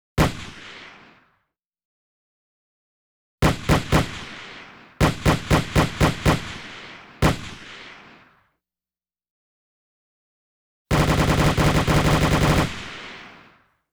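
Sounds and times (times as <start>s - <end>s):
automatic weapon firing: 3.4s - 7.8s, 10.9s - 13.6s.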